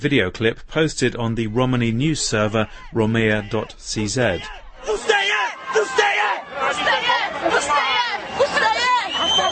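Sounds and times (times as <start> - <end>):
speech: 0.0 - 5.1
large crowd shouting and chanting outdoors at a march: 2.4 - 9.5.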